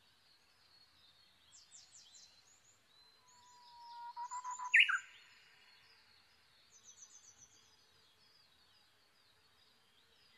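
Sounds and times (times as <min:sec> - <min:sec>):
Japanese bush warbler song: 0:00.0 - 0:10.3.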